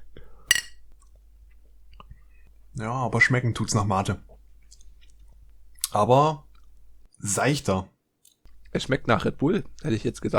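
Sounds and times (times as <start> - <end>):
glasses clinking in a toast: 0.5 - 0.8
speech: 2.8 - 4.3, 6.0 - 6.5, 7.2 - 7.9, 8.7 - 10.3.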